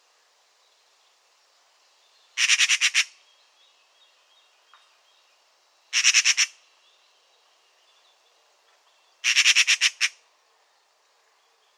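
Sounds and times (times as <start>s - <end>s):
Eurasian magpie harsh rasping chatter: 2.4s - 3.1s, 5.9s - 6.5s, 9.2s - 10.2s.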